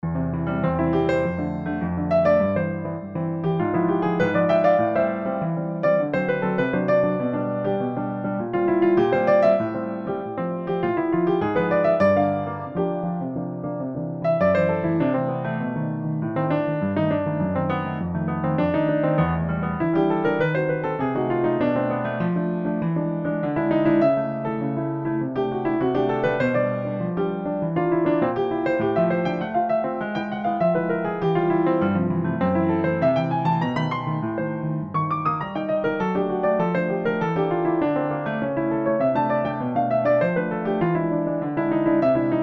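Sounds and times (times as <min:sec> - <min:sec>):
piano playing chorinho: 0:00.0 - 0:42.4.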